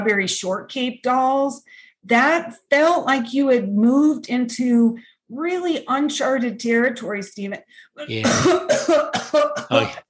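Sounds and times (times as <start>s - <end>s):
speech: 0.0s - 10.0s
smoker's harsh raspy cough: 8.0s - 10.0s.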